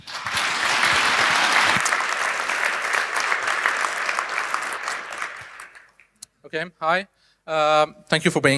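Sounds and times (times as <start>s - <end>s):
audience applause from a room full of people: 0.0s - 6.2s
speech: 6.5s - 8.5s.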